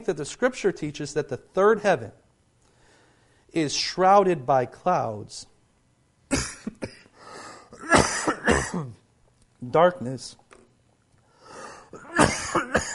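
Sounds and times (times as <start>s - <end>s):
speech: 0.0s - 2.2s, 3.5s - 5.5s, 6.3s - 6.9s, 8.7s - 9.0s, 9.6s - 10.4s
person coughing: 6.3s - 9.0s, 11.9s - 12.9s.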